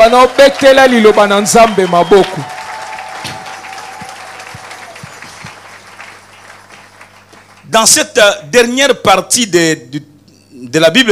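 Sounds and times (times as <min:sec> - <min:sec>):
speech: 0:00.0 - 0:02.6, 0:07.7 - 0:11.0
church congregation applauding: 0:00.0 - 0:07.8.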